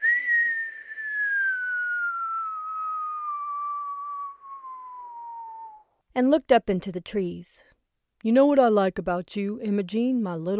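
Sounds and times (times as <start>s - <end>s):
man blowing a long slow whistle sliding downward in pitch: 0.0s - 6.0s
speech: 6.2s - 10.5s.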